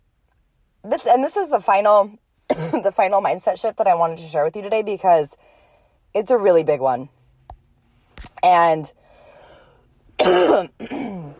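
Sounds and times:
speech: 0.8s - 5.5s, 6.1s - 7.2s, 8.4s - 9.0s, 10.2s - 11.2s
person coughing and clearing throat: 2.5s - 2.9s, 10.2s - 11.3s.

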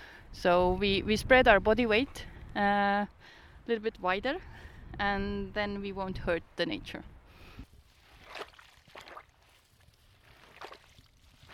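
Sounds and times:
speech: 0.4s - 7.1s
bog shoes squelching in shallow bog water: 7.7s - 11.5s.

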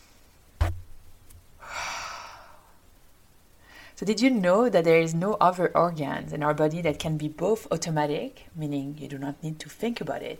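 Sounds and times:
low thump: 0.6s - 1.0s
deep breath: 1.6s - 2.8s, 3.6s - 4.0s
speech: 4.0s - 10.3s.

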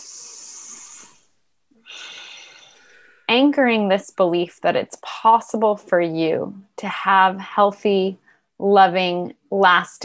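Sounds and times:
deep breath drawn into the belly: 0.0s - 3.3s
speech: 3.4s - 10.0s.

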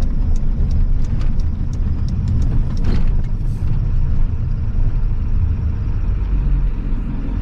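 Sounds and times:
faint ticking and rattles: 0.0s - 4.6s
heavy truck towing a loaded trailer accelerating at half throttle in eco mode: 0.0s - 7.4s.

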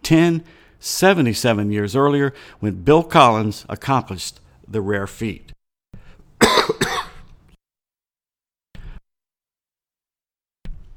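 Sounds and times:
speech: 0.1s - 5.6s
loud cough: 6.4s - 7.3s.

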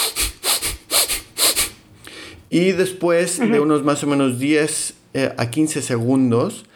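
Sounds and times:
rapid rhythmic breathing demonstration: 0.0s - 2.5s
speech: 2.5s - 6.7s.

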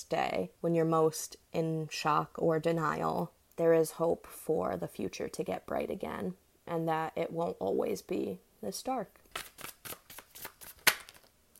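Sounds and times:
speech: 0.0s - 9.7s
tarot cards being shuffled: 9.2s - 11.5s
sharp loud tarot card snap: 9.3s - 11.3s.

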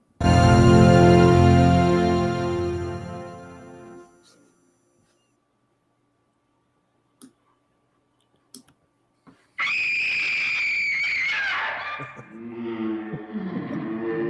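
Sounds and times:
resonant chord in an old horror film: 0.0s - 4.2s
horror movie scream: 9.6s - 12.2s.

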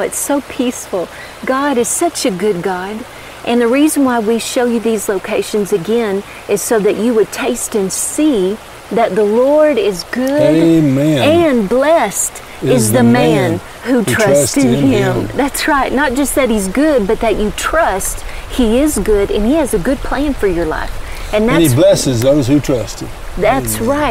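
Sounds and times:
creek water running: 0.0s - 24.1s
speech: 0.0s - 24.1s
laughter: 10.4s - 11.5s, 12.6s - 15.4s, 21.4s - 22.5s, 23.5s - 24.1s.

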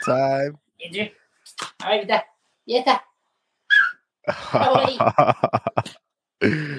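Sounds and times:
people talking: 0.0s - 3.1s, 4.3s - 6.7s
three-year-old male dog whining: 3.7s - 4.1s
laughter: 4.3s - 6.7s.

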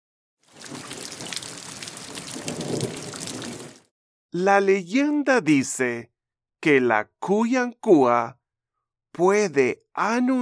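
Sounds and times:
heavy rain pouring on a surface: 0.5s - 3.9s
low thunder rumble: 0.7s - 3.8s
speech: 4.3s - 8.4s, 9.2s - 10.4s.

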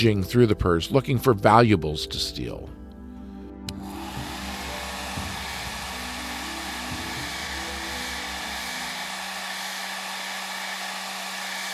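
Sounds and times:
speech: 0.0s - 2.8s
blow dryer running: 3.7s - 11.7s.

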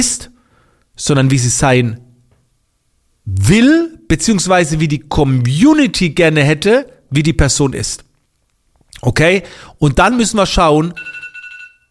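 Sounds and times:
speech: 0.0s - 0.4s, 1.0s - 2.0s, 3.2s - 8.1s, 9.0s - 11.2s
electronic alarm clock ringing: 11.0s - 11.8s.

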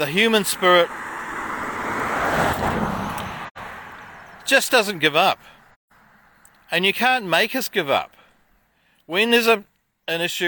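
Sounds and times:
speech: 0.0s - 1.0s, 4.5s - 5.6s, 6.7s - 8.2s, 9.1s - 10.4s
car driving up the road: 0.0s - 6.7s.

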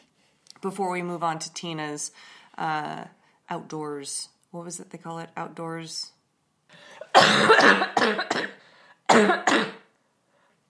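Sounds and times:
speech: 0.6s - 9.8s
harsh coughing fit: 6.9s - 9.9s.

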